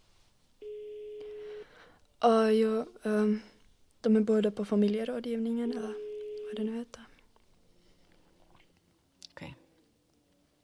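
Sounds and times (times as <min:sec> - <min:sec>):
phone ringback tone: 0:00.6 - 0:01.7, 0:05.9 - 0:06.7
speech: 0:02.2 - 0:07.1.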